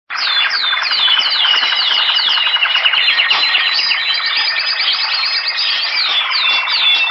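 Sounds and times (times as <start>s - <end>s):
forest birds musical tone ringtone: 0.1s - 7.0s.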